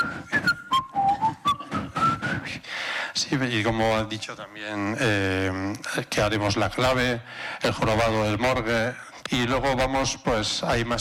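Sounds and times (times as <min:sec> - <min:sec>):
person whistling a soundtrack melody: 0:00.0 - 0:02.7
speech: 0:03.3 - 0:10.9.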